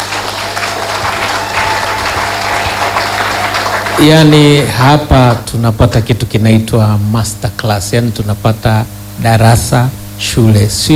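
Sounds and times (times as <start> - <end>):
audience applause at an investment talk: 0.0 - 4.6
speech: 4.0 - 10.9.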